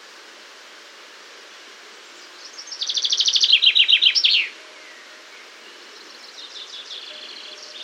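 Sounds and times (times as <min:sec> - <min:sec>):
Common chaffinch Fringilla coelebs song: 0:01.7 - 0:07.8.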